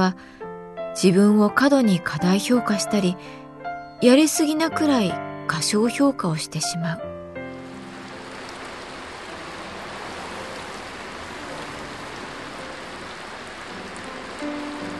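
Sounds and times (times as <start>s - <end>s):
speech: 0.0s - 0.4s, 1.0s - 3.4s, 4.0s - 7.2s
dense rain pattering on a surface: 6.6s - 14.9s.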